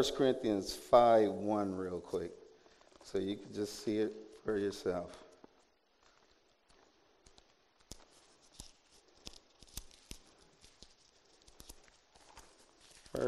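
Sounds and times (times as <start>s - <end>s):
speech: 0.0s - 2.4s, 3.0s - 5.2s
Bible pages turning: 4.3s - 13.2s.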